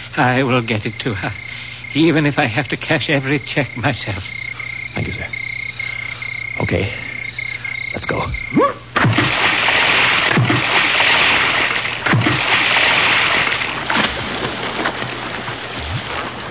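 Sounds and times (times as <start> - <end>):
speech: 0.2 - 4.4, 5.0 - 5.4, 6.6 - 7.0, 7.9 - 8.8
water splashing as two people swim downstream with a raft: 9.0 - 16.4.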